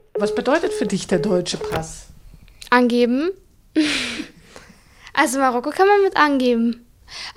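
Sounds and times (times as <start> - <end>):
telephone line disconnect tone beeps after an automated message: 0.2 - 1.9
speech: 0.2 - 2.1, 2.7 - 4.0, 5.2 - 7.2.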